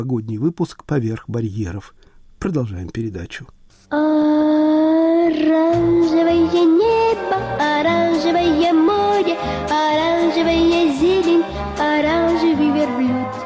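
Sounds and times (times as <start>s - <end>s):
speech: 0.0s - 13.4s
Georgian female singer singing a bright melodic tune: 3.9s - 13.4s.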